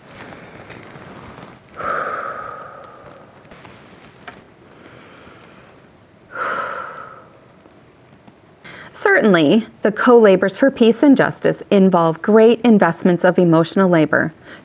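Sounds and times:
faint steady hiss: 0.0 - 14.6
deep breathing: 1.7 - 3.8, 4.7 - 7.6, 8.6 - 9.0
speech: 9.0 - 14.6.

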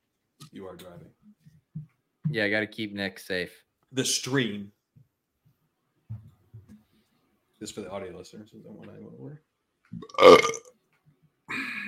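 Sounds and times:
speech: 0.5 - 1.6, 2.3 - 4.8, 7.6 - 10.7
person burping: 10.0 - 10.7.

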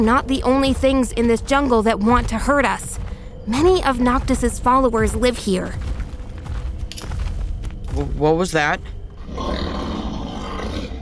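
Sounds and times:
speech: 0.0 - 5.9, 8.0 - 8.9
monstrous wolf-like fantasy creature roaring in a jungle: 9.2 - 11.0.

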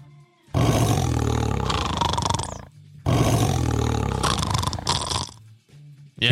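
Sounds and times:
tiger roaring: 0.6 - 5.4.

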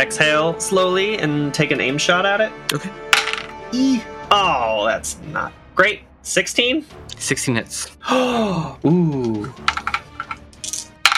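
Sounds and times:
speech: 0.0 - 3.1, 3.7 - 9.8
dice rolled for damage clattering across a hard tabletop: 3.2 - 3.5, 9.6 - 11.1.

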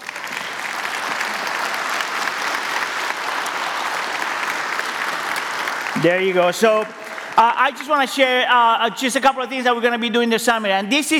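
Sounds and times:
audience applause: 0.0 - 8.6
speech: 6.0 - 11.1.

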